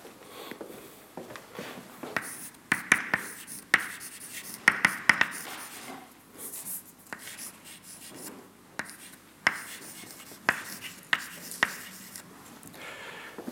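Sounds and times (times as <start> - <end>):
writing a force-balance equation on a board: 2.2 - 12.2.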